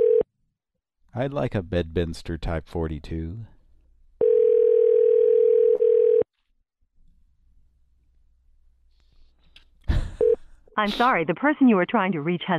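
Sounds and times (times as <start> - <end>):
telephone call ringing tone: 0.0 - 0.2, 4.2 - 6.3
speech: 1.2 - 3.5, 10.8 - 12.5.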